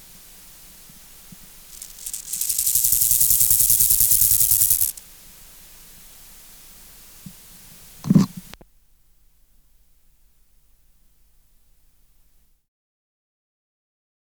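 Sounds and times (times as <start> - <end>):
Chorthippus moreanus grasshopper song: 0.0 - 7.2.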